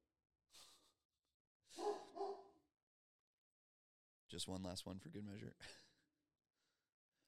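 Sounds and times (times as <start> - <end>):
dog barking: 1.8 - 2.5
speech: 4.3 - 5.9.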